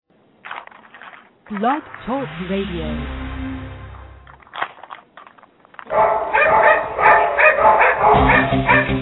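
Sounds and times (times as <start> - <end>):
speech: 1.5 - 3.2
dogs barking and yipping excitedly: 5.8 - 8.9.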